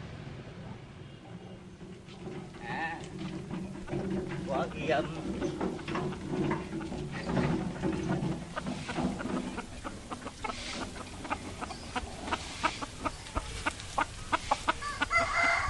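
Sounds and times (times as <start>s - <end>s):
farmyard flock of hens clucking in a small countryside town in Vietnam: 1.5s - 15.6s
speech: 4.7s - 5.7s
rooster crowing in a small countryside town in Vietnam: 14.8s - 15.6s.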